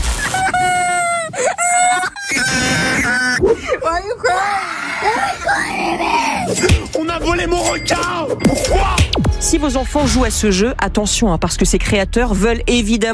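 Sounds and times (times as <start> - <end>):
young gamer wailing and screaming in distress: 0.3 - 6.7
young person gasping and sobbing: 0.4 - 6.9
speech: 7.1 - 13.1.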